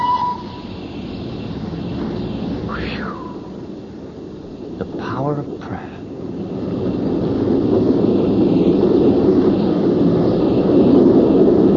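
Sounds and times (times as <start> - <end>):
high tone: 0.0 - 0.7
train pulling away rumbling on rails: 0.0 - 11.7.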